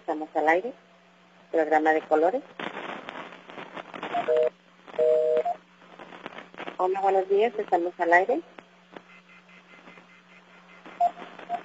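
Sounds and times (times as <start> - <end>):
speech: 0.2 - 0.9, 1.5 - 2.6, 4.3 - 5.1, 6.8 - 8.6
telephone line hissing with a low hum: 2.6 - 8.0, 8.9 - 11.6
short beeps of a dropped phone connection: 9.1 - 11.6.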